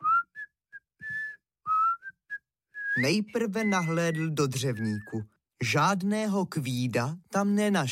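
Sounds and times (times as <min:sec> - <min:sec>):
person whistling a short bouncy tune: 0:00.0 - 0:05.4
speech: 0:03.0 - 0:07.9.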